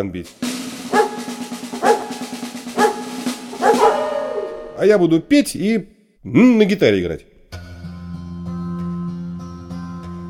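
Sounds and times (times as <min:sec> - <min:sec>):
speech: 0:00.0 - 0:01.1, 0:04.8 - 0:07.3
dog barking: 0:00.9 - 0:04.8.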